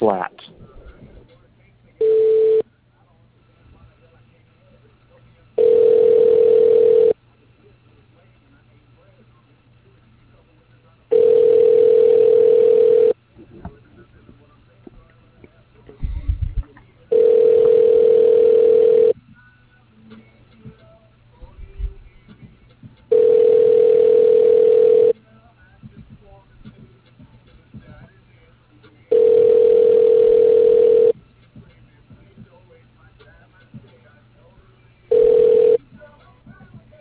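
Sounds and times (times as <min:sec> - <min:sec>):
speech: 0:00.0 - 0:00.3
telephone ringback tone during call transfer through voice processing system: 0:02.0 - 0:02.6, 0:05.6 - 0:07.2, 0:11.1 - 0:13.2, 0:17.1 - 0:19.1, 0:23.1 - 0:25.1, 0:29.1 - 0:31.1, 0:35.1 - 0:35.8.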